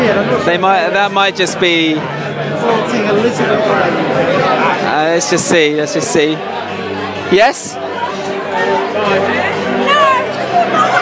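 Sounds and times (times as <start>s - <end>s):
speech: 0.2s - 9.6s
crowd cheering in a dense steady roar: 7.8s - 11.0s.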